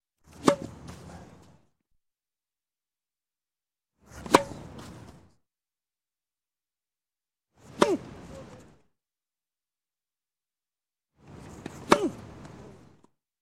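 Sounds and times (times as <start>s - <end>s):
tennis serve: 0.3s - 1.6s, 4.1s - 5.3s, 7.6s - 8.8s, 11.2s - 13.0s.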